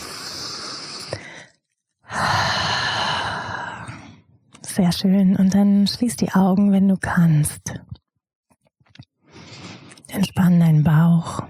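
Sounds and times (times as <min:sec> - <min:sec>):
loud steady exhale through the open mouth: 0:00.0 - 0:04.2
long breathy inhale: 0:00.0 - 0:04.3
speech: 0:04.8 - 0:08.0, 0:10.1 - 0:11.4.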